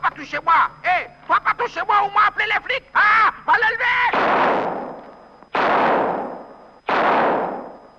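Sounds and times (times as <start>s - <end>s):
speech: 0.2s - 3.7s
Colt revolver gunshots fired from a ridge: 4.1s - 5.0s, 5.5s - 7.9s.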